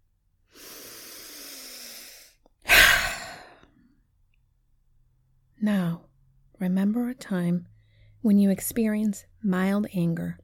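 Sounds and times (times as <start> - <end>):
deep breath during a rapid breathing exercise: 0.5 - 4.0
speech: 5.6 - 6.0, 6.6 - 10.4.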